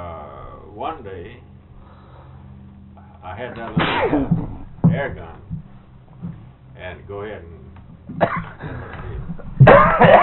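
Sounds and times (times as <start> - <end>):
speech: 0.8 - 1.5, 3.2 - 5.6, 6.2 - 10.2
person coughing from a tickle in the throat: 3.8 - 4.4, 8.2 - 8.9, 9.6 - 10.2.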